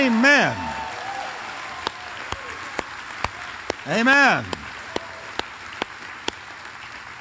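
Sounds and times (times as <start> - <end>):
crowd clapping and cheering: 0.0 - 7.2
sharp rhythmic hand claps: 1.7 - 7.2
speech: 3.9 - 4.6.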